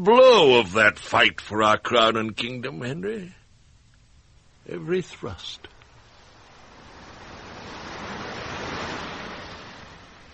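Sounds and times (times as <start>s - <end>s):
speech: 0.0s - 3.4s, 4.7s - 5.7s
wave crashing on shore: 5.9s - 10.3s.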